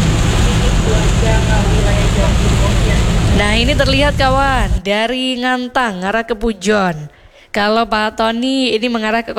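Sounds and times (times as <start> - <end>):
dense busy road traffic rumble with engine drone: 0.0 - 4.8
speech: 3.6 - 9.3.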